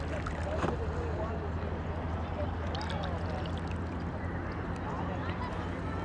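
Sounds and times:
water sloshing and lapping: 0.0s - 1.0s, 2.5s - 6.0s
faint murmuring voices: 0.0s - 6.0s.

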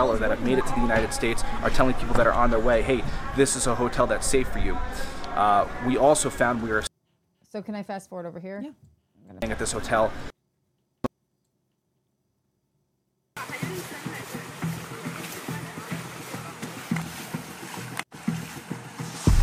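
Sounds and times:
speech: 0.0s - 6.9s, 7.5s - 10.3s
water splashing and trickling from wet clothes being wrung out: 13.4s - 19.4s.

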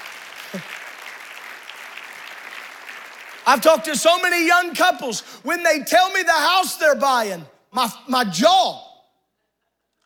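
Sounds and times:
audience applause: 0.0s - 4.4s
speech: 0.5s - 0.8s, 3.5s - 8.8s.

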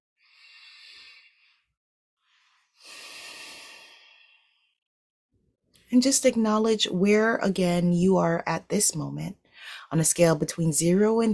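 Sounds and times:
slow deep human breathing: 0.2s - 4.8s
speech: 5.9s - 11.3s.

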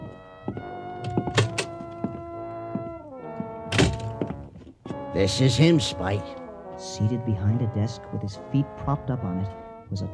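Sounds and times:
door opening and shutting: 1.0s - 2.0s, 3.7s - 4.4s
speech: 5.2s - 10.1s.

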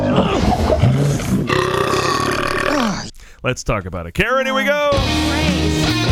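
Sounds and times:
creature burping in a movie trailer: 0.0s - 3.2s
speech: 3.4s - 5.9s.

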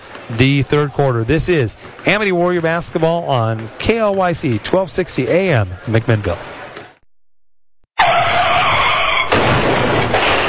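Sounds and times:
speech: 0.3s - 6.5s
tire skid screech of a car sliding hard in a crash: 8.0s - 10.4s.

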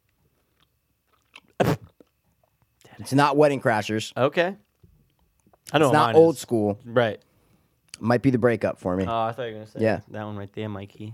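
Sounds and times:
someone chewing a chewy fruit candy: 0.2s - 2.7s
speech: 3.0s - 4.6s, 5.7s - 7.3s, 8.0s - 11.1s.

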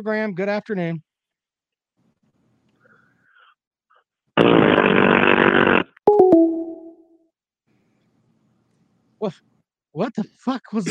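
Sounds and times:
speech: 0.0s - 1.1s, 9.2s - 10.8s
loud buzzy fart noise made by a caller: 4.4s - 6.0s.

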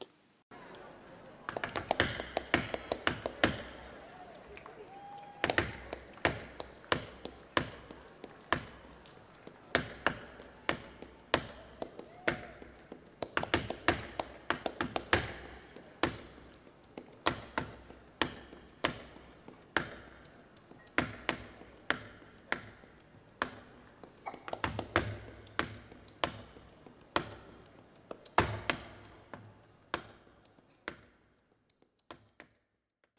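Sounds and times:
sharp flamenco hand claps: 1.5s - 32.6s.

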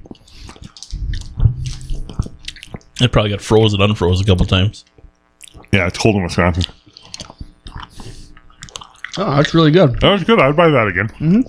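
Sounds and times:
wet chewing of hard sticky strawberry-flavored taffy candy: 0.0s - 3.1s, 4.4s - 10.2s
speech: 3.0s - 4.9s, 5.7s - 6.8s, 9.2s - 11.4s.

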